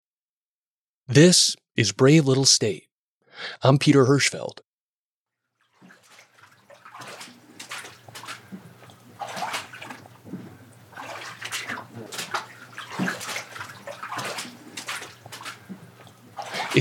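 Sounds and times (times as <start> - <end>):
speech: 1.1 - 4.7
feet wading through ankle-high water in a dark basement: 5.6 - 16.7.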